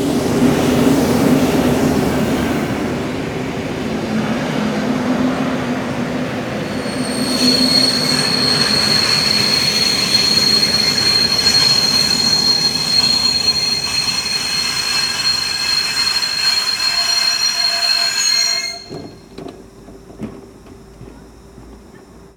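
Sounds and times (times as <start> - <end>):
train stopping: 0.1 - 22.3.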